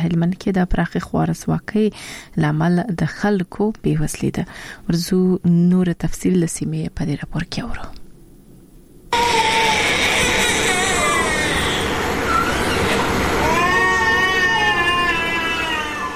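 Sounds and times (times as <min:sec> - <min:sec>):
speech: 0:00.0 - 0:08.0
noisy background: 0:08.3 - 0:16.1
malnourished children crying at a hospital: 0:09.1 - 0:16.1.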